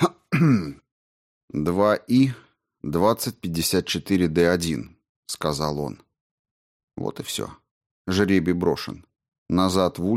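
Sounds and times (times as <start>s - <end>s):
person clearing throat with gravelly rasping grunts: 0.0s - 0.8s
speech: 0.0s - 0.8s, 1.5s - 6.0s, 7.0s - 10.1s.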